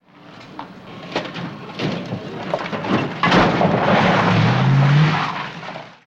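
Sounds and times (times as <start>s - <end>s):
car rattles: 0.3s - 6.0s.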